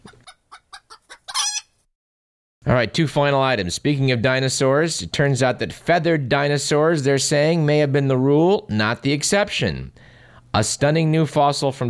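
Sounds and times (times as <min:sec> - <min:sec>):
chicken clucking: 0:00.0 - 0:01.7
speech: 0:02.6 - 0:11.8.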